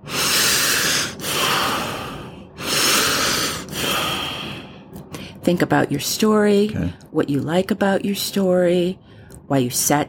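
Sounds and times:
deep breathing during a group breathing exercise: 0:00.0 - 0:05.4
speech: 0:05.5 - 0:10.0.

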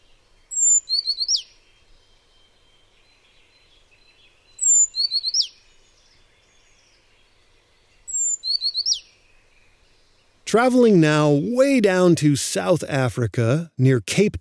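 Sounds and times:
Azure Tit calling in a riparian forest along the Charyn river, Kazakhstan: 0:10.5 - 0:14.4
speech: 0:10.5 - 0:14.4.

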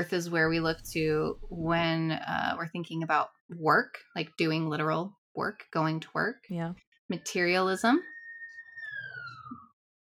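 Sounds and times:
speech: 0:00.0 - 0:08.1
police siren wailing: 0:08.1 - 0:09.7.

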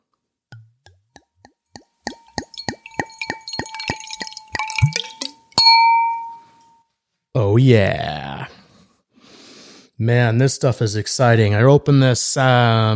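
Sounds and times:
bright ringing clink of glass: 0:01.8 - 0:06.8
Franc 2017 wine glugging into a glass: 0:02.0 - 0:06.4
speech: 0:07.6 - 0:08.2, 0:10.0 - 0:12.9.

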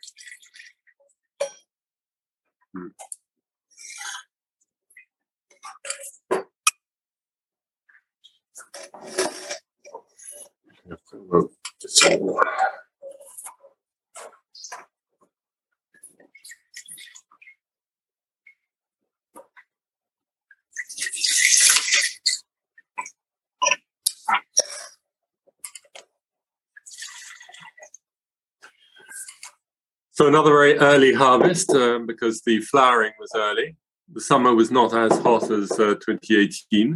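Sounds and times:
speech: 0:02.8 - 0:03.1, 0:11.3 - 0:12.8, 0:30.2 - 0:36.9
wine pouring into glasses: 0:20.9 - 0:22.2, 0:26.9 - 0:27.6.

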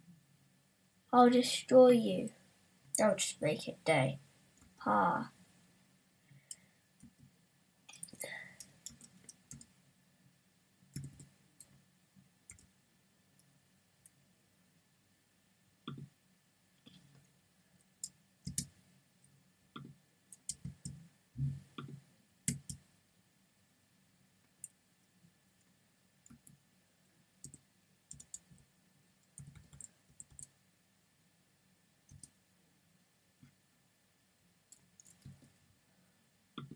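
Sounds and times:
speech: 0:01.1 - 0:02.4, 0:03.0 - 0:04.2, 0:04.8 - 0:05.4
typing on a computer keyboard: 0:08.0 - 0:09.7, 0:10.9 - 0:11.8, 0:12.5 - 0:12.7, 0:18.0 - 0:18.7, 0:19.8 - 0:21.0, 0:21.8 - 0:22.8, 0:27.4 - 0:28.6, 0:29.2 - 0:30.5, 0:32.1 - 0:32.3, 0:34.7 - 0:35.4.

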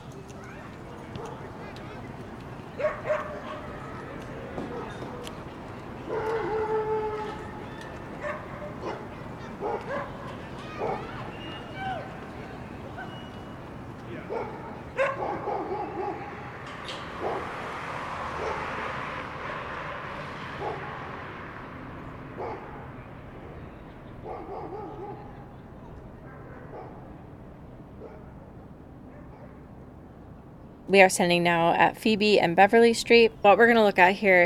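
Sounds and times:
hubbub: 0:00.0 - 0:34.4
dogs barking and yipping at an off-leash dog park: 0:00.4 - 0:01.6, 0:02.7 - 0:05.4, 0:06.0 - 0:21.2, 0:22.2 - 0:25.4, 0:26.2 - 0:27.1, 0:29.1 - 0:29.7
speech: 0:30.9 - 0:34.4.

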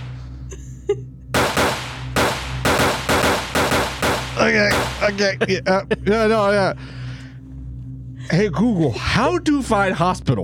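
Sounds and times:
laughter: 0:00.4 - 0:01.3, 0:04.4 - 0:07.0
gunfire from guns in a video game: 0:01.4 - 0:05.3
speech: 0:04.5 - 0:07.0, 0:08.3 - 0:10.4.

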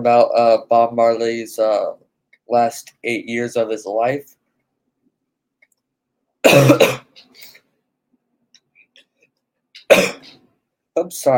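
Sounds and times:
speech: 0:00.0 - 0:04.4, 0:11.0 - 0:11.3
person coughing: 0:06.4 - 0:07.4, 0:09.8 - 0:10.4.

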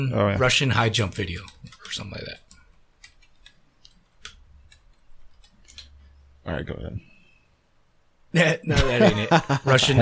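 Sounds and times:
speech: 0:00.0 - 0:02.4, 0:06.4 - 0:07.1, 0:08.3 - 0:09.9
quiet keyboard typing: 0:01.2 - 0:06.1
laughter: 0:08.6 - 0:09.9.

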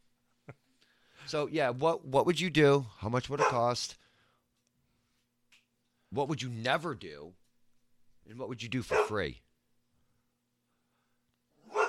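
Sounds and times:
speech: 0:01.3 - 0:04.0, 0:06.1 - 0:07.4, 0:08.2 - 0:09.4
pet dog barking: 0:03.4 - 0:03.7, 0:08.9 - 0:09.3, 0:11.6 - 0:11.8.

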